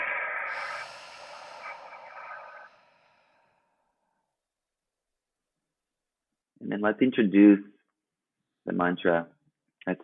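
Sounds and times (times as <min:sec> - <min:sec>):
deep inhale through the nose in a breathing exercise: 0:00.0 - 0:03.7
long airy exhale through the mouth in a breathing exercise: 0:00.0 - 0:03.8
speech: 0:06.7 - 0:07.7, 0:08.7 - 0:10.0.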